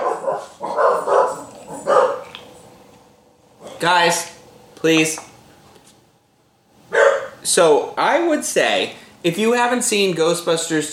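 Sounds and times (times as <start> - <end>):
dogs barking: 0.0 - 2.4, 6.9 - 7.4
speech: 3.8 - 5.3, 7.4 - 10.9.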